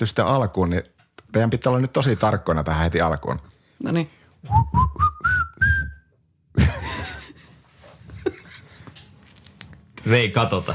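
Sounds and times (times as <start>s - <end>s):
speech: 0.0s - 5.1s, 10.1s - 10.7s
person whistling a short tune: 4.5s - 6.1s.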